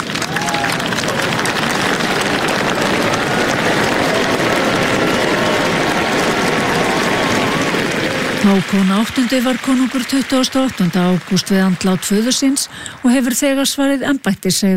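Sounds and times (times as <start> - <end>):
crowd cheering and applauding the royal family at the palace in Oslo: 0.0 - 14.1
speech: 8.4 - 14.7.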